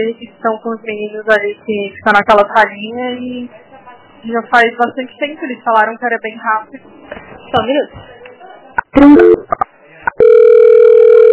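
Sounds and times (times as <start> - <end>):
speech: 0.0 - 8.2, 8.9 - 9.6
telephone dialing beeps: 10.2 - 11.3.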